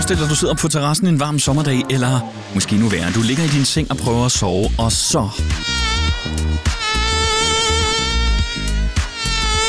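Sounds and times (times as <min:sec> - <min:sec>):
speech: 0:00.1 - 0:06.4
mosquito whining with a high-pitched buzz: 0:05.4 - 0:09.6.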